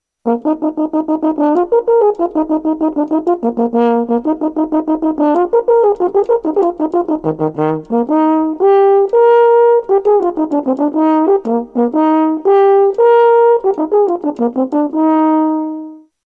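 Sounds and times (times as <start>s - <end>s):
French horn: 0.2s - 16.1s.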